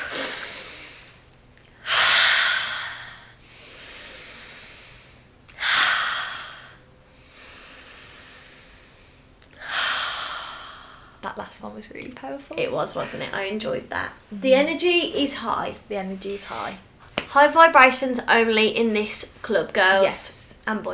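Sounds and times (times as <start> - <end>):
deep breaths during a group relaxation exercise: 0.0 - 11.2
speech: 11.3 - 20.9.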